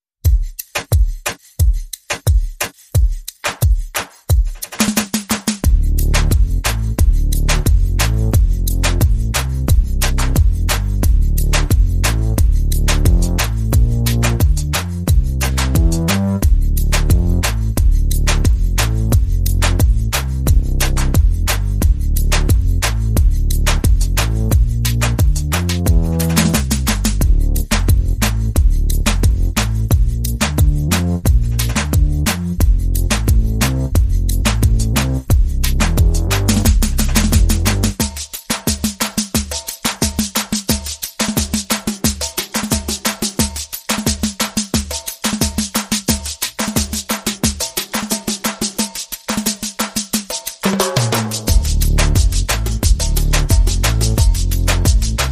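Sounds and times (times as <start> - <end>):
percussion: 0.0 - 55.3
bass: 5.6 - 38.0, 51.2 - 55.3.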